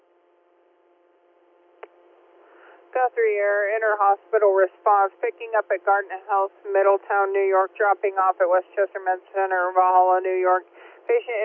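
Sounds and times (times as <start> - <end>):
faint radio hiss: 2.4 - 11.4
speech: 3.8 - 11.4.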